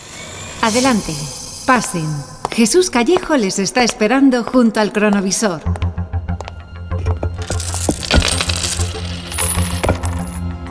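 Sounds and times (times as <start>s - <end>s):
speech: 0.6s - 5.8s
coins and jewels pouring onto a hard table surface: 7.4s - 10.4s.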